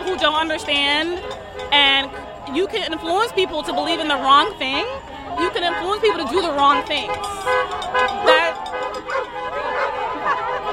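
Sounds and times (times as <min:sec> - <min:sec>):
murmur of voices: 0:00.0 - 0:10.7
speech: 0:00.2 - 0:08.3
dog barking and yipping: 0:09.1 - 0:10.5.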